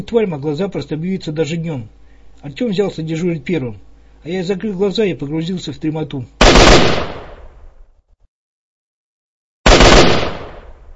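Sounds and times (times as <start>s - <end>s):
speech: 0.0s - 7.0s
gunshots fired at the mouth of a grotto: 6.4s - 7.5s, 9.7s - 10.8s.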